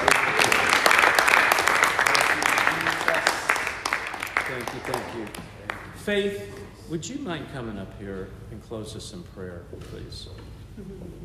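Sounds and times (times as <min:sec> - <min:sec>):
crowd applauding: 0:00.0 - 0:06.0
speech: 0:06.1 - 0:11.2.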